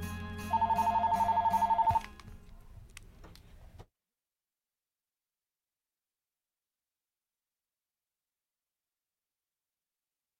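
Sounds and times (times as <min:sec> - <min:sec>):
telephone ringing for incoming call: 0:00.5 - 0:02.1.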